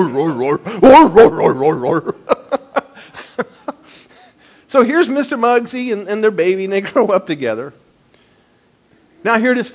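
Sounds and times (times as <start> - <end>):
speech: 0.0 - 2.3, 4.7 - 7.8, 9.2 - 9.7
person imitating dogs laughing: 0.1 - 3.8.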